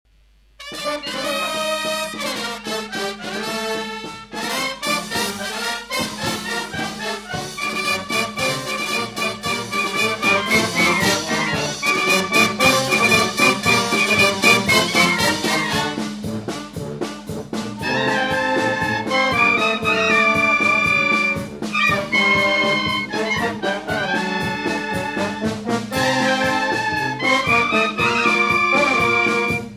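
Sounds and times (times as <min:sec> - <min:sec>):
musical band playing at a folklore festival: 0:00.6 - 0:29.7.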